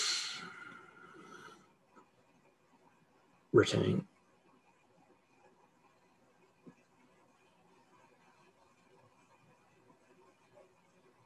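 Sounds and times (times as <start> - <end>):
slow deep inhale through the nose during a breathing exercise: 0.0 - 1.7
speech: 3.5 - 4.1.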